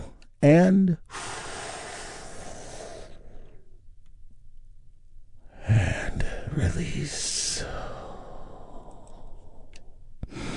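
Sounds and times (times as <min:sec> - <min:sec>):
speech: 0:00.4 - 0:01.2, 0:06.8 - 0:07.9
deep breath drawn in during a guided relaxation session: 0:01.1 - 0:03.7, 0:07.6 - 0:10.5.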